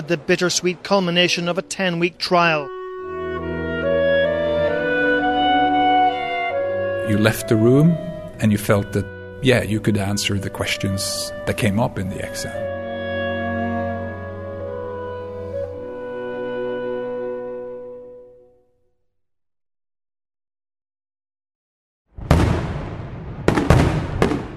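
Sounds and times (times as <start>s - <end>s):
speech: 0.0s - 2.8s, 7.1s - 12.8s
sustained musical tone: 0.0s - 18.6s
fireworks exploding with booming bursts and crackling tails: 22.2s - 24.5s.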